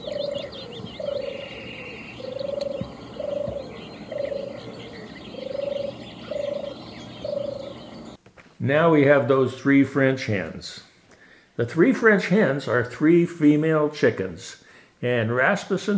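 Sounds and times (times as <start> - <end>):
European turtle dove giving trilled purrs: 0.0 - 8.2
small birds twittering: 0.0 - 8.2
speech: 8.7 - 10.9, 11.6 - 15.9.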